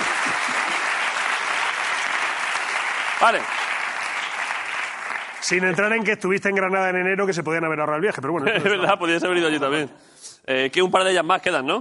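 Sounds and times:
audience applauding: 0:00.0 - 0:06.0
speech: 0:03.2 - 0:03.7, 0:05.5 - 0:11.7.

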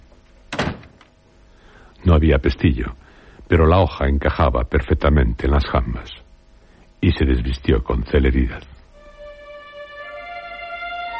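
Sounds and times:
room hum: 0:00.0 - 0:11.1
door shutting: 0:00.5 - 0:01.1
speech: 0:02.0 - 0:06.2, 0:07.0 - 0:08.7.

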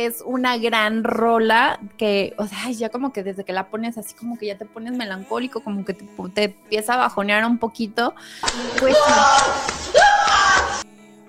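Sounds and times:
speech: 0:00.0 - 0:10.0
person letting out a strained mock scream of suffering: 0:08.4 - 0:10.8.

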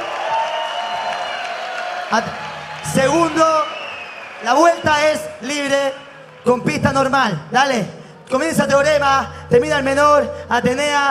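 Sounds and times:
audience applause and cheering at a rap battle: 0:00.0 - 0:07.2
speech: 0:02.1 - 0:03.7, 0:04.4 - 0:11.0.

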